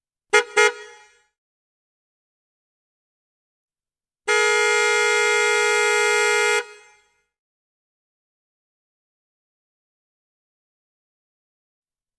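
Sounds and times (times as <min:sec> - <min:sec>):
klaxon horn: 0:00.3 - 0:01.2, 0:04.3 - 0:07.1.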